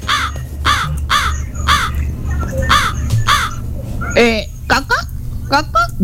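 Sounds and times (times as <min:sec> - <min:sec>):
crow cawing in harsh bursts: 0:00.0 - 0:02.0, 0:02.7 - 0:03.6
steady low rumble: 0:00.0 - 0:06.0
speech: 0:04.2 - 0:04.5, 0:05.5 - 0:06.0.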